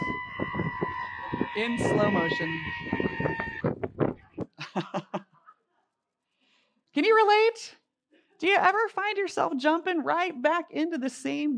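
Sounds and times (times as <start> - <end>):
sheep bleating in short wavering cries: 0.0 - 3.6
speech: 1.6 - 2.8, 8.4 - 11.5
laughter: 4.5 - 5.6.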